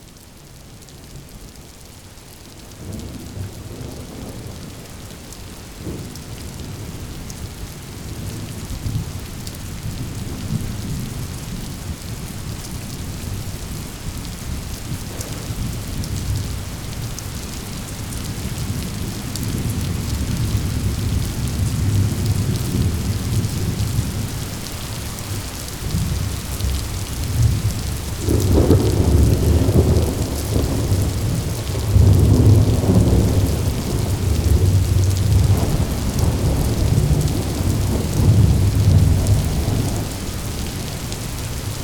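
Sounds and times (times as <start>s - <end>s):
rain: 0.0s - 41.8s
thunder rolling: 25.8s - 40.2s.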